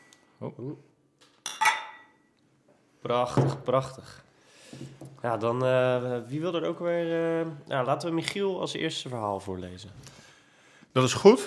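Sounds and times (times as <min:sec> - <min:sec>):
speech: 0:00.4 - 0:01.0, 0:03.0 - 0:10.2, 0:10.9 - 0:11.4
beer glasses of strong tripel beer clinking in a toast: 0:01.4 - 0:02.3.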